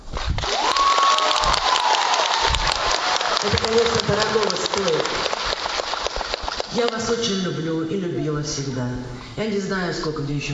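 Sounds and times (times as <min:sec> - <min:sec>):
audience applause for a singer in a concert hall: 0:00.0 - 0:07.1
faint audience cheer in a concert hall: 0:00.4 - 0:04.6
speech: 0:06.8 - 0:10.5.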